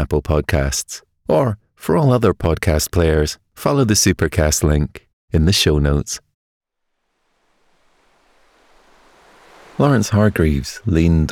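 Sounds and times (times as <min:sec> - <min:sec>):
speech: 0:00.0 - 0:06.2, 0:09.8 - 0:11.3
gentle ocean waves washing on sand: 0:06.8 - 0:11.3.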